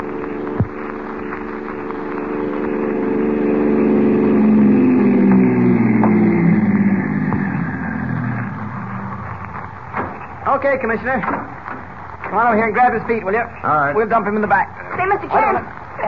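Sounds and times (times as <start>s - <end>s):
car engine running with low droning hum: 0.0s - 16.0s
sharp thump: 9.9s - 10.2s
speech: 10.6s - 11.5s, 12.3s - 16.0s.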